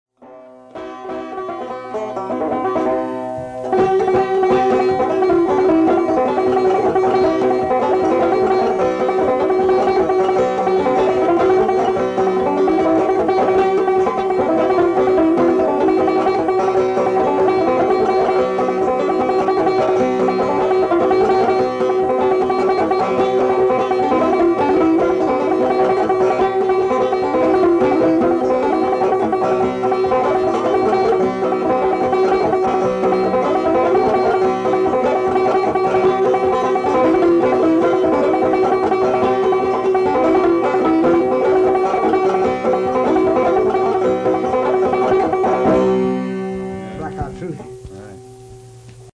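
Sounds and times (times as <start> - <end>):
banjo solo in Kentucky: 0.1 - 48.9.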